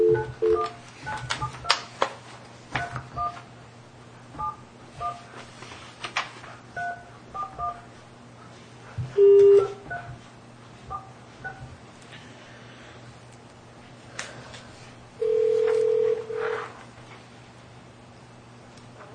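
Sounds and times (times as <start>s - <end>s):
telephone ringback tones over a speakerphone: 0.0s - 0.7s, 9.2s - 9.9s, 15.2s - 16.6s
touch-tone keypad beeps on speakerphone: 0.0s - 1.7s, 6.8s - 7.8s, 9.2s - 10.1s.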